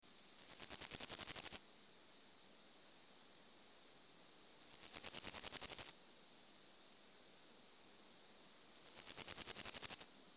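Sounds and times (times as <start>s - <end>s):
Pseudochorthippus parallelus at 24°C: 0.1s - 1.6s, 4.5s - 6.0s, 8.5s - 10.3s.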